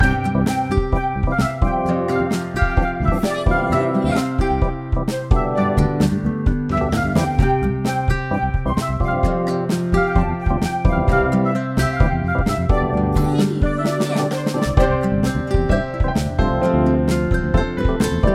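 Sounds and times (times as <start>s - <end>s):
battle music: 0.0s - 18.3s.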